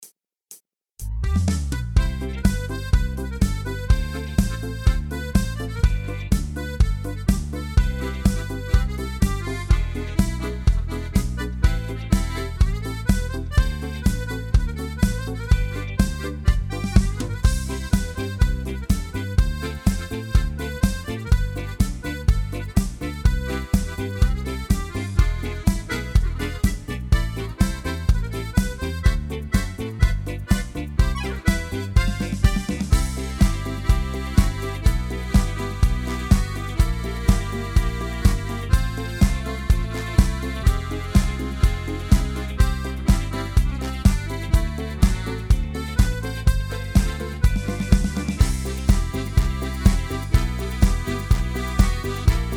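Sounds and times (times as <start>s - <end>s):
party march music: 1.0s - 52.5s.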